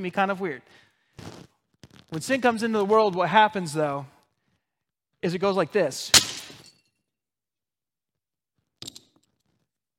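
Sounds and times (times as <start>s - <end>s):
speech: 0.0s - 1.5s, 2.1s - 4.2s, 5.2s - 6.2s
clay pot smashing into pieces: 6.1s - 6.8s
clay shards clattering and tinkling: 6.2s - 6.8s.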